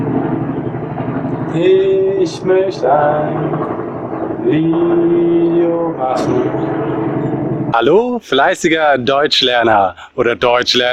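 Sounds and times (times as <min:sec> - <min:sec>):
loud helicopter flying overhead with rotor chop: 0:00.0 - 0:08.1
speech: 0:01.5 - 0:03.7, 0:04.4 - 0:06.9, 0:07.7 - 0:10.9.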